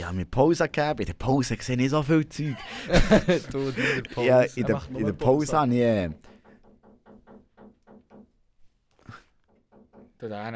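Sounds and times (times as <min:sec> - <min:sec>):
speech: 0:00.1 - 0:06.3, 0:10.2 - 0:10.5
laughter: 0:02.3 - 0:06.2
knocking on a door: 0:05.0 - 0:10.5.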